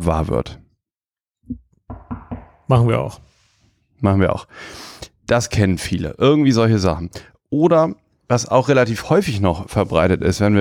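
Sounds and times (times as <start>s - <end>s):
speech: 0.0s - 0.6s, 2.7s - 3.3s, 4.0s - 10.5s
hollow knocks on wood: 1.9s - 2.7s.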